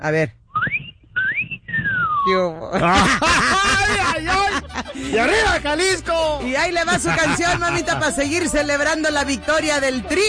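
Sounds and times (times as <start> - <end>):
speech: 0.0 - 0.8, 2.3 - 10.2
woman whistling a short sliding tune: 0.6 - 2.2
laughter: 2.6 - 6.0, 6.6 - 8.6.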